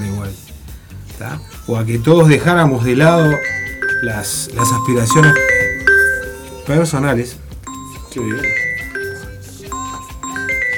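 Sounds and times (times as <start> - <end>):
speech: 1.2 - 5.5, 6.7 - 7.4, 8.2 - 8.7
phone ringtone playing a bright melodic phrase: 2.2 - 10.7.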